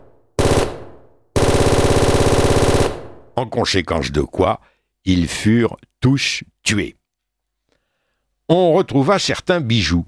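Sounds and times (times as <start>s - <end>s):
gunshot blast of robbers opening fire on police: 0.4s - 1.1s
rapid automatic gunfire of robbers opening fire on police: 0.4s - 3.2s
speech: 3.4s - 7.0s, 8.5s - 10.0s.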